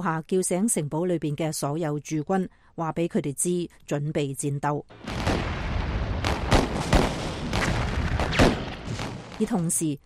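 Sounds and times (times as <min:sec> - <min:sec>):
speech: 0:00.0 - 0:05.2, 0:09.4 - 0:10.0
cannon fire from gunboats: 0:04.9 - 0:09.6
constant rumbling din of battle: 0:05.0 - 0:09.5.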